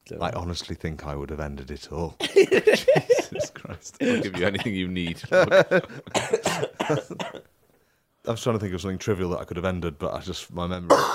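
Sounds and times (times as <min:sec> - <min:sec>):
speech: 0:00.1 - 0:07.5, 0:08.3 - 0:11.1
laughter: 0:02.2 - 0:07.2
person coughing harshly: 0:06.1 - 0:07.5, 0:10.9 - 0:11.1.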